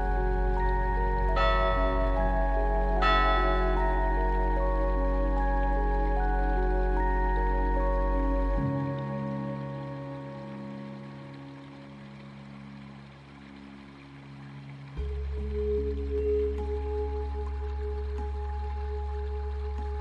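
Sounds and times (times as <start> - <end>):
meditation bell ringing: 0.0 - 10.2
steady low hum: 0.0 - 19.9.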